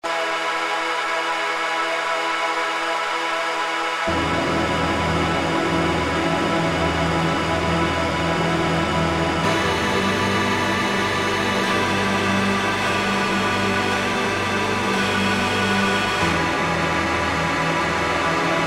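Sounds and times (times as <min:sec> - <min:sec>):
house music synth pad: 0:00.1 - 0:18.6.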